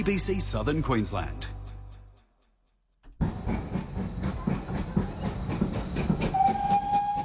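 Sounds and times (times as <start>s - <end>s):
speech: 0.0s - 1.6s
steam train chuffing: 3.2s - 7.2s
high sustained steam train whistle: 6.3s - 7.2s.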